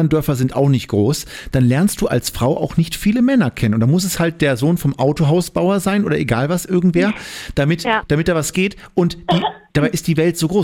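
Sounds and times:
speech: 0.0s - 10.6s
single short cough: 9.3s - 9.7s.

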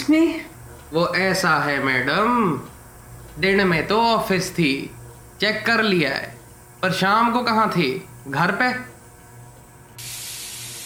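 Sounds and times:
speech: 0.1s - 2.7s, 3.4s - 8.9s
pressure cooker releasing hissing steam: 3.6s - 10.8s.

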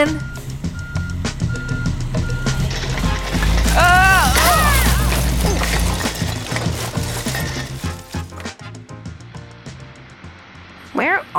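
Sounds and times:
speech: 0.0s - 0.3s
garbage truck reversing alarm beeping: 0.0s - 2.7s
heavy garbage truck slowing down and rumbling: 0.0s - 8.6s
garbage truck mechanical clanks: 2.5s - 8.5s.

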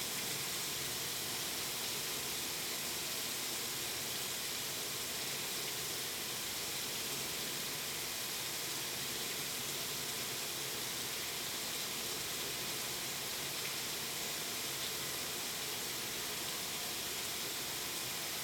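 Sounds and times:
dense steady rain: 0.0s - 18.4s.

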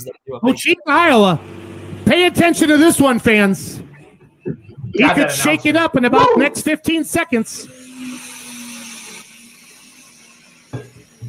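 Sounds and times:
speech: 0.0s - 3.8s, 4.4s - 8.2s
high-revving 5-inch pro stock drag racing engine roaring: 1.0s - 11.2s.

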